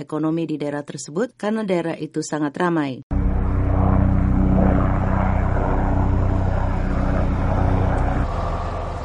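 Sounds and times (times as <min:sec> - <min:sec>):
speech: 0:00.0 - 0:03.2
firefighting propeller aircraft flying over wildfire: 0:03.1 - 0:09.0.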